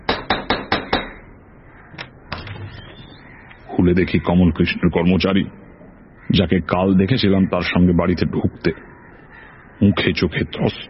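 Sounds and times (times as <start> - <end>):
door knocker rapping on a door: 0.1 - 1.2
speech: 3.8 - 5.7, 6.3 - 8.9, 9.8 - 10.8.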